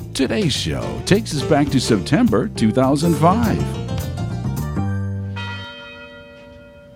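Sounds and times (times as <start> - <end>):
speech: 0.2 - 3.9
university tower chimes ringing: 5.0 - 6.9.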